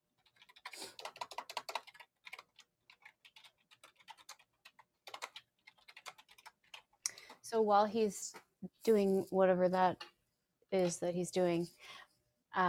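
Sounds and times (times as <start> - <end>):
rapid typing on a computer keyboard: 0.2 - 7.3
speech: 7.5 - 10.1, 10.7 - 11.9.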